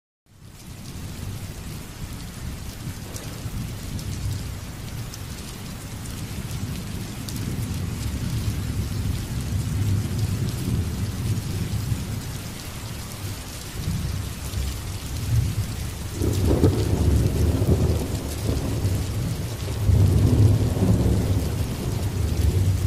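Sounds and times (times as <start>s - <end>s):
rain: 0.3s - 22.8s
thunder: 2.9s - 4.5s, 6.3s - 12.2s, 13.8s - 22.8s.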